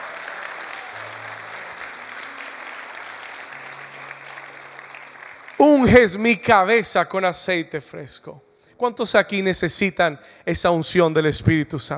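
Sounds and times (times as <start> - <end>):
audience applauding: 0.0 - 6.4
speech: 5.6 - 11.9.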